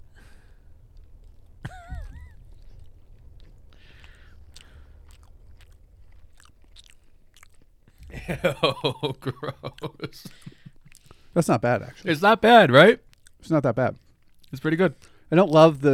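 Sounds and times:
chewing food right on the microphone: 0.2s - 11.4s, 12.8s - 15.9s
laughter: 8.0s - 10.7s
speech: 8.2s - 10.6s, 11.4s - 15.9s.

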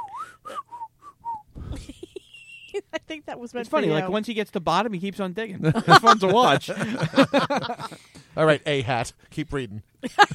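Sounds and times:
person whistling a short melodic phrase: 0.0s - 1.6s
laughter: 1.6s - 3.0s, 5.6s - 8.1s, 10.0s - 10.3s
speech: 2.8s - 10.3s.

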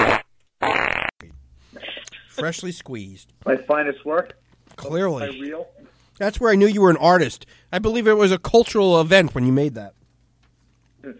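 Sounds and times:
buzzy fart sound effects: 0.0s - 1.2s
speech: 2.4s - 10.0s.

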